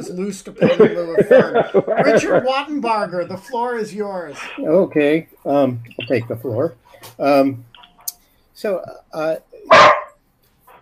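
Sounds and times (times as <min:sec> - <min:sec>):
laughter: 0:00.0 - 0:03.8
speech: 0:00.0 - 0:07.7, 0:08.6 - 0:09.9
dog barking: 0:09.7 - 0:10.2.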